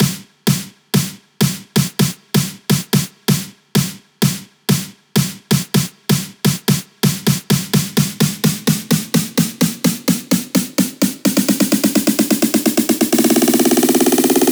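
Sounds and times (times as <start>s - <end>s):
snare drum roll: 0.0s - 14.4s.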